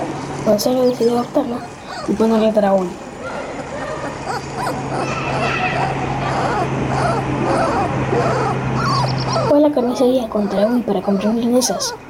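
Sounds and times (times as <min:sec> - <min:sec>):
steady low hum: 0:00.0 - 0:12.0
speech: 0:00.4 - 0:03.0, 0:09.6 - 0:12.0
small dog whimpering and yelping: 0:01.4 - 0:02.4, 0:03.8 - 0:12.0
small dog barking short sharp barks: 0:03.2 - 0:12.0.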